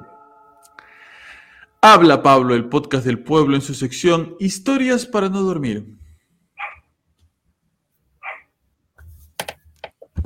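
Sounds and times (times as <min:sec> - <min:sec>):
speech: 0:01.8 - 0:06.0
dog barking: 0:06.6 - 0:06.9, 0:08.2 - 0:08.5.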